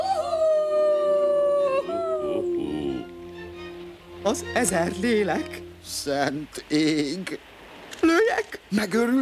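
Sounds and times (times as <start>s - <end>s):
eerie owl or monkey howl on an island: 0.0s - 3.1s
speech: 4.2s - 9.2s.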